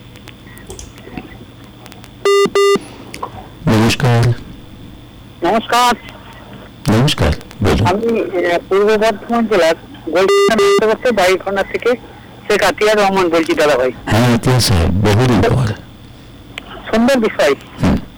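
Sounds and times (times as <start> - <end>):
touch-tone dialing beeps on a phone-in line: 2.2 - 2.9, 10.3 - 11.2
people talking: 3.7 - 4.4, 5.4 - 15.8, 16.6 - 18.1.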